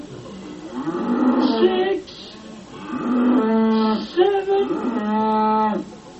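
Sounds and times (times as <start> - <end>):
cows mooing: 0.7 - 1.7, 2.7 - 5.9.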